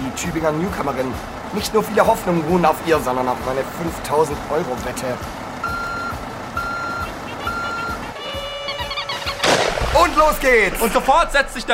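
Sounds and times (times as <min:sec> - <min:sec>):
truck rumbling: 0:00.0 - 0:11.7
speech: 0:00.2 - 0:05.4, 0:10.2 - 0:11.7
truck reversing alarm beeping: 0:05.6 - 0:09.0.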